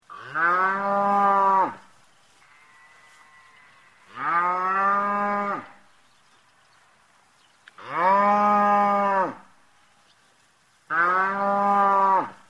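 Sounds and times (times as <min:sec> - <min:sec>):
cow mooing: 0:00.2 - 0:01.8, 0:02.5 - 0:05.7, 0:07.8 - 0:09.4, 0:10.9 - 0:12.4.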